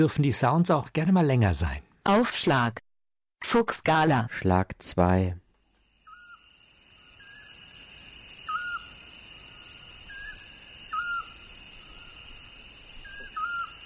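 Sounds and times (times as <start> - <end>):
speech: 0.0 - 2.8, 3.4 - 5.4
high insect buzz: 5.7 - 13.8
Eurasian scops owl calling in the Rawanduz valley, Soran district, Iraq: 6.0 - 13.8.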